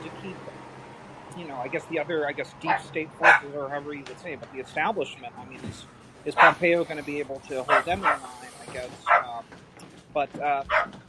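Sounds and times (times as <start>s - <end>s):
speech: 1.4s - 11.0s
dog barking: 3.2s - 3.5s, 6.4s - 6.6s, 7.7s - 8.4s, 9.0s - 9.4s, 10.7s - 11.0s.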